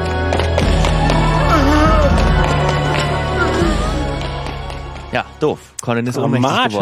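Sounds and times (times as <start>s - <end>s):
footsteps of men approaching in a cave: 0.0s - 5.4s
speech: 5.4s - 6.8s.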